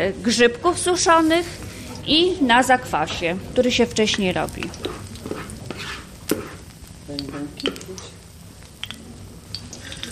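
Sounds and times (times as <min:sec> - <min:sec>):
speech: 0:00.0 - 0:04.9
pancakes sizzling in a frying pan: 0:03.7 - 0:10.1.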